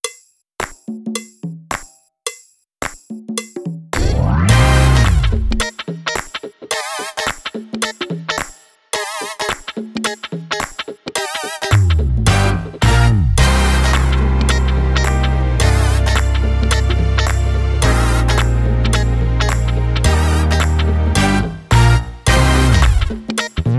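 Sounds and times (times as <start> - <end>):
drumless funk music: 4.0 - 23.7.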